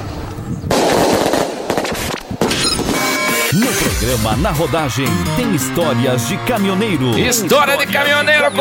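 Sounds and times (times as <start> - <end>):
firework rockets whooshing: 0.7 - 3.1
firework rocket explosions: 0.7 - 3.5
speech: 4.0 - 8.6.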